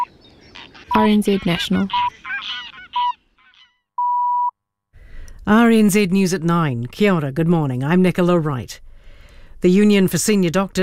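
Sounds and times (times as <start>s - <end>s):
greylag goose honking: 0.0s - 3.8s
speech: 1.0s - 2.0s, 5.7s - 8.9s, 9.6s - 10.8s
short electronic beep: 4.0s - 4.5s.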